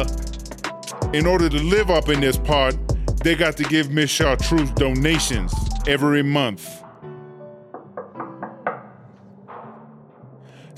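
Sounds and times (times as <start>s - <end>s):
speech: 1.1s - 6.8s
knocking on a wooden door of a house in the old part of a prison: 7.7s - 9.0s.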